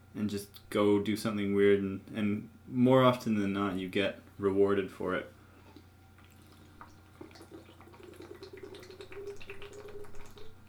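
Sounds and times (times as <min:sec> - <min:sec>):
speech: 0:00.2 - 0:05.4
liquid sloshing: 0:05.7 - 0:10.6
person chugging water: 0:05.7 - 0:10.6.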